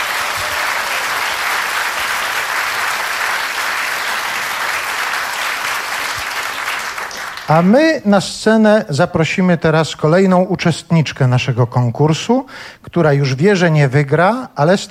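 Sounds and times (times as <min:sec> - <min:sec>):
audience applause at a stage event: 0:00.0 - 0:07.7
speech: 0:07.5 - 0:14.8.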